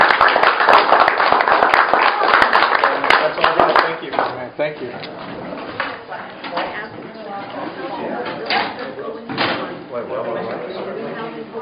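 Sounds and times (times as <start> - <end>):
evening audience applause: 0.0 - 4.3
crowd voices: 0.9 - 11.6.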